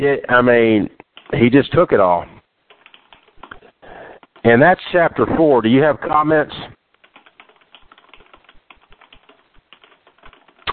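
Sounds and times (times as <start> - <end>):
speech: 0.0 - 2.3, 4.4 - 6.8
rapid keyboard typing with clicky keystrokes: 1.0 - 1.4, 2.7 - 4.5, 7.0 - 10.7.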